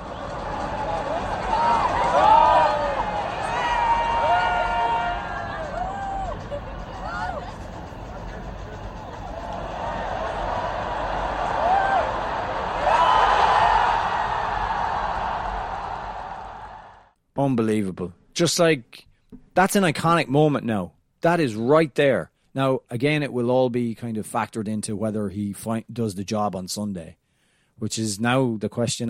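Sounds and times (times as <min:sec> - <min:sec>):
football stadium crowd roaring during a player's run: 0:00.0 - 0:17.1
people shouting in a football stadium crowd: 0:00.8 - 0:06.4, 0:09.2 - 0:16.9
speech: 0:17.6 - 0:27.2, 0:27.8 - 0:29.0.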